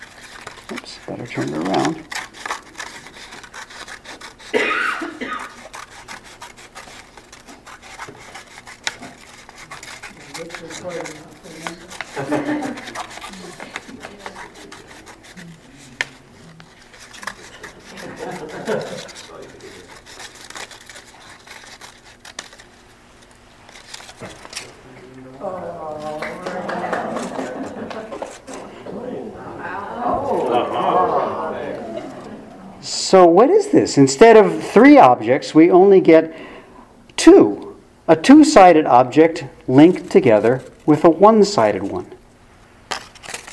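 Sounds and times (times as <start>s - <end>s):
scissors cutting lengthwise through a paper Möbius strip: 0.0s - 24.8s, 26.0s - 28.6s, 39.7s - 42.2s, 42.9s - 43.5s
speech: 0.7s - 2.2s, 33.4s - 36.5s, 38.1s - 42.1s
laughter: 10.2s - 15.5s, 17.2s - 20.0s, 25.0s - 32.8s.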